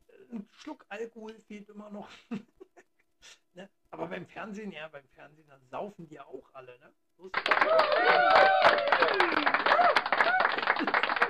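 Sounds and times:
speech: 0:00.3 - 0:02.5, 0:03.2 - 0:10.1
crowd applauding with dense rapid clapping: 0:07.3 - 0:11.2
laughter: 0:07.7 - 0:11.2.

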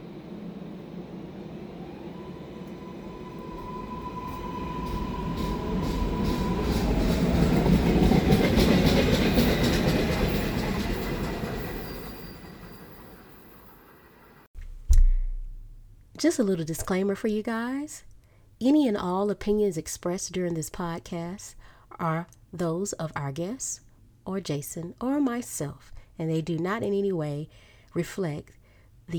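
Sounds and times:
train rolling on rails: 0:00.0 - 0:14.5
speech: 0:16.2 - 0:29.1.

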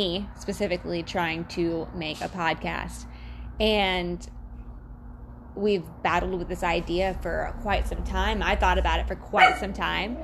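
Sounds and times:
speech: 0:00.0 - 0:04.4, 0:05.6 - 0:10.2
dog barking and yipping: 0:09.4 - 0:09.8.

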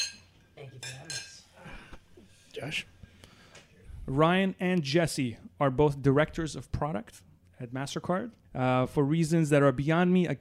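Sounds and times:
glasses clinking together in a toast: 0:00.0 - 0:01.6
speech: 0:02.6 - 0:03.0, 0:04.1 - 0:10.3.

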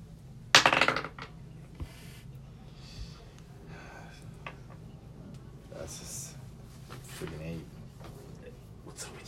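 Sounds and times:
dice tumbling onto a hard surface: 0:00.6 - 0:01.3
faint breathing: 0:01.8 - 0:04.5
shuffling: 0:05.8 - 0:09.2.

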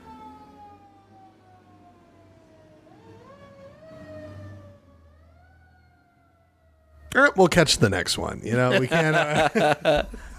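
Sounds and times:
ambulance siren wailing past: 0:00.0 - 0:07.6
speech: 0:07.2 - 0:10.2
laughter: 0:08.5 - 0:10.3.

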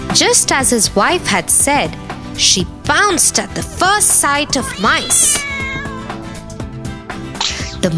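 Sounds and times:
speech: 0:00.2 - 0:05.6
big strong cat meowing loudly in a grocer's store: 0:04.6 - 0:06.2.

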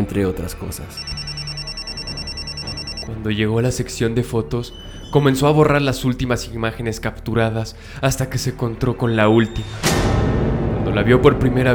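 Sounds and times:
speech: 0:00.0 - 0:01.2, 0:03.1 - 0:10.2, 0:10.9 - 0:11.7
cell phone ringtone: 0:00.9 - 0:03.1.

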